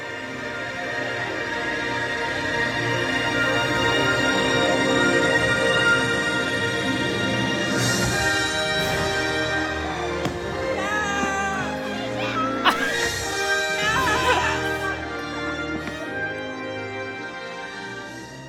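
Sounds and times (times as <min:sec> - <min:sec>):
music playing at a fireworks show: 0:00.0 - 0:18.4
crowd screaming and cheering at a nighttime fireworks show: 0:10.3 - 0:13.1, 0:13.8 - 0:15.0
laughter: 0:10.8 - 0:15.3.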